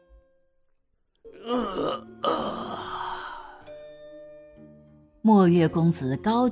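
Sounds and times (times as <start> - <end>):
speech: 1.2 - 2.7, 5.2 - 6.4
loud deliberate yawn: 1.4 - 3.7.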